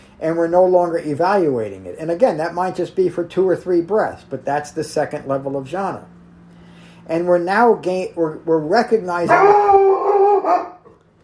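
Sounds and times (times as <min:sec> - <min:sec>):
speech: 0:00.2 - 0:06.2, 0:07.1 - 0:10.7
pet dog barking and howling at an expected delivery: 0:09.2 - 0:10.9.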